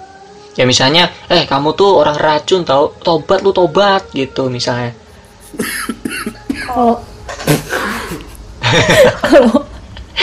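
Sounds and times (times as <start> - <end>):
speech: 0.6 - 7.6, 8.7 - 9.6
person laughing: 5.2 - 9.8
person coughing: 5.4 - 8.4.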